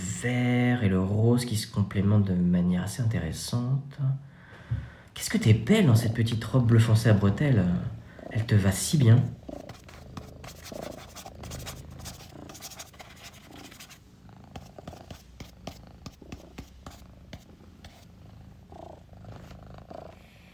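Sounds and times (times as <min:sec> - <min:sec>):
speech: 0:00.2 - 0:09.4
cat purring: 0:07.7 - 0:20.5
faint scratching and rustling movements: 0:08.2 - 0:20.3.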